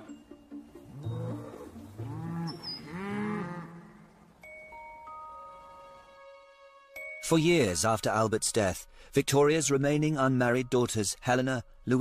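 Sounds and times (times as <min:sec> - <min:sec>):
cow mooing: 0:00.9 - 0:04.2
speech: 0:07.3 - 0:12.0.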